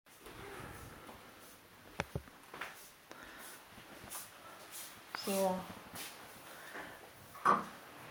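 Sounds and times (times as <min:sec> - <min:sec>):
soft shuffling: 0:00.1 - 0:07.3
speech: 0:05.3 - 0:06.1.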